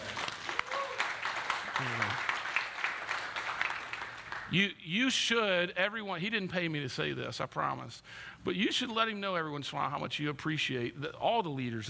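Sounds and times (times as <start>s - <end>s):
audience applause: 0.0s - 4.5s
speech: 1.8s - 2.3s, 4.5s - 11.8s.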